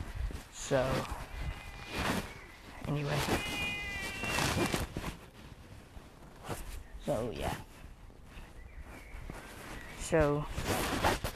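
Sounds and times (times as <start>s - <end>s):
scuffing and rustling outdoors: 0.0s - 11.3s
speech: 0.7s - 1.2s, 2.9s - 3.6s, 7.1s - 7.7s, 10.1s - 11.2s
cat meowing outdoors: 3.0s - 4.9s.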